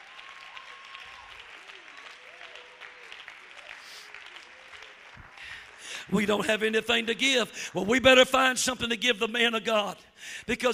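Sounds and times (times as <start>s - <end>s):
audience clapping: 0.0s - 7.4s
speech: 6.1s - 10.7s.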